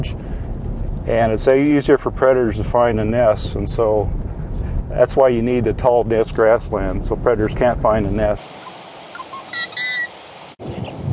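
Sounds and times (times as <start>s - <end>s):
speech: 0.0s - 0.3s, 1.0s - 4.2s, 4.9s - 8.7s
rumble of wind or handling noise: 0.0s - 9.1s, 10.1s - 11.1s
steady outdoor hiss: 8.1s - 10.7s
yellow-headed blackbird harsh buzzy call: 8.6s - 10.2s.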